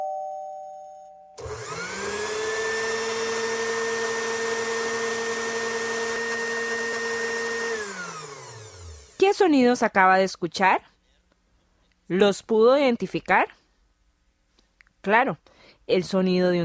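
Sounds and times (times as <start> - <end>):
electric blender running: 1.4 - 9.4
speech: 9.4 - 10.9, 12.1 - 13.6, 15.0 - 16.6.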